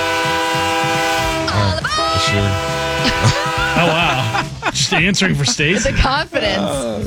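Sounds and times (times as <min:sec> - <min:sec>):
train horn: 0:00.0 - 0:04.5
speech: 0:02.3 - 0:07.0
laughter: 0:02.8 - 0:06.8.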